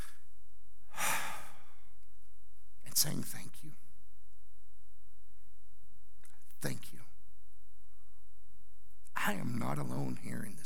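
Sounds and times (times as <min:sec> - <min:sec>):
person taking a deep breath during a spoken prayer: 0:00.9 - 0:01.9
speech: 0:03.0 - 0:03.9, 0:06.6 - 0:07.1, 0:09.2 - 0:10.6.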